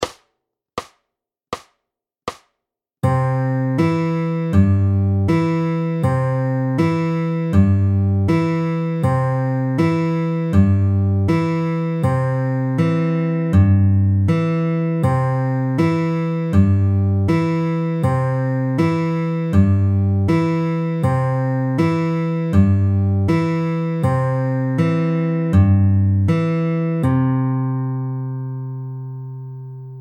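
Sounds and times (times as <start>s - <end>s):
slow fingerpicked guitar: 3.1s - 29.9s.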